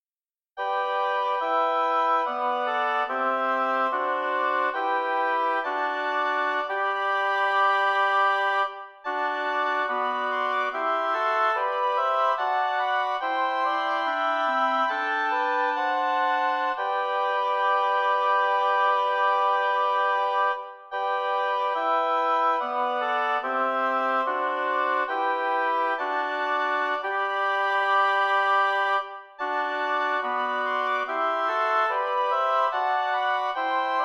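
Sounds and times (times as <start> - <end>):
lyrical oboe quartet playing: 0.6 - 34.0.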